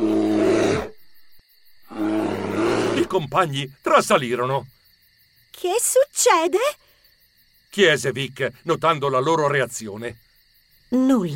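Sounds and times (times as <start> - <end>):
bear roaring: 0.0 - 1.0, 1.8 - 3.3
speech: 3.1 - 4.8, 5.5 - 6.8, 7.7 - 10.3, 10.9 - 11.3.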